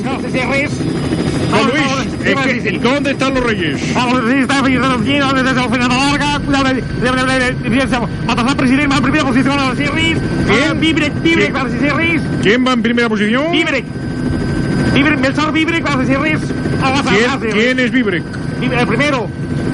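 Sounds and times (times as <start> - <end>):
speech: 0.0 - 14.3, 14.9 - 19.7
loud helicopter rotor drone: 0.0 - 19.7.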